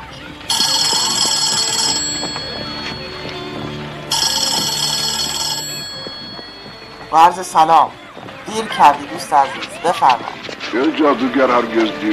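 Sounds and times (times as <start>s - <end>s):
telephone ringing with bright electronic ring: 0.5s - 7.6s
speech: 7.1s - 12.1s.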